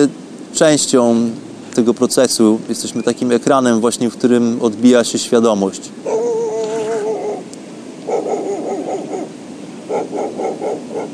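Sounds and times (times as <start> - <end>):
speech: 0.0 - 6.3
outdoor noise on a beach: 0.0 - 11.1
dog barking on a beach: 8.0 - 11.1.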